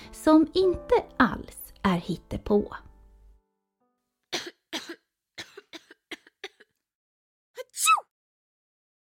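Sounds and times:
speech: 0.2s - 2.9s
child coughing: 4.4s - 6.7s.

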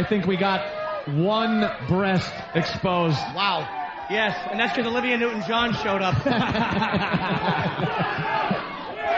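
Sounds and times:
speech: 0.0s - 8.5s
packed live audience cheering and shouting: 0.0s - 9.1s
packed crowd whooping and laughing: 3.0s - 9.1s.

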